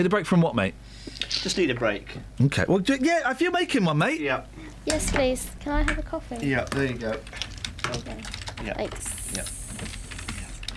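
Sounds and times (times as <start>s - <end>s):
speech: 0.0s - 9.9s
keyboard typing: 4.9s - 10.7s.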